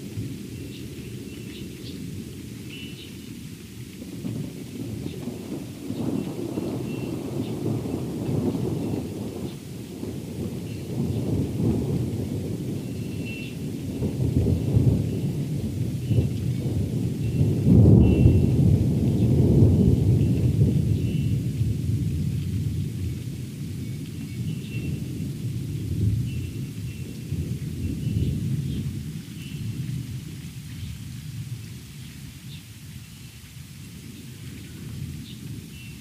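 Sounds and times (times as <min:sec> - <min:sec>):
faint patter of rain: 0:00.0 - 0:36.0
rolling thunder from a thunderstorm: 0:03.4 - 0:32.6, 0:33.8 - 0:36.0
steady wash of storm noise: 0:04.0 - 0:30.6.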